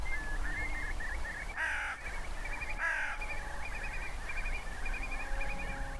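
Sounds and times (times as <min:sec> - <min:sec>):
curlew calling: 0:00.0 - 0:05.8
crow cawing: 0:01.6 - 0:02.0, 0:02.8 - 0:03.2.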